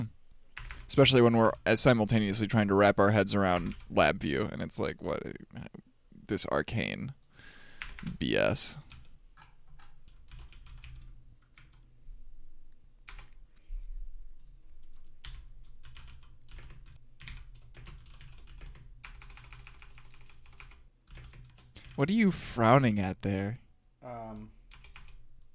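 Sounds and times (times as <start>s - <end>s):
typing on a computer keyboard: 0.6s - 0.9s, 7.2s - 8.2s, 8.9s - 11.9s, 13.1s - 13.4s, 14.4s - 22.0s, 24.3s - 25.5s
speech: 0.9s - 7.2s, 8.0s - 8.9s, 22.0s - 24.6s.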